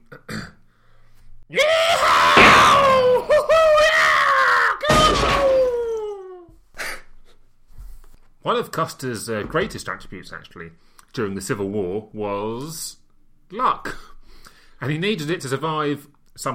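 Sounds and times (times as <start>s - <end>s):
Civil War cavalry battle cry yelled: 1.6s - 6.1s
speech: 8.5s - 14.1s, 14.8s - 16.5s.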